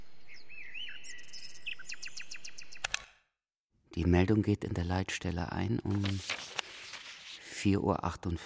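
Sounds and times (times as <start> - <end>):
nightingale singing: 0.0 - 2.9
speech: 4.0 - 6.4, 7.6 - 8.4.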